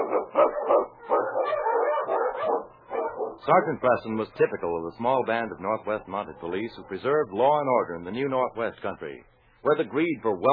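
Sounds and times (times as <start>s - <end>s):
husky sled dog barking and yipping: 0.0s - 3.4s
speech: 3.4s - 10.5s.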